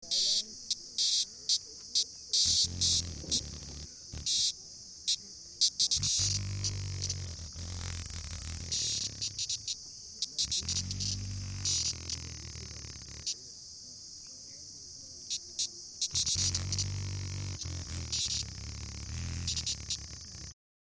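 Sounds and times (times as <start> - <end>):
insect superfast wing flap: 1.0 - 4.5, 5.6 - 13.4, 15.3 - 20.6.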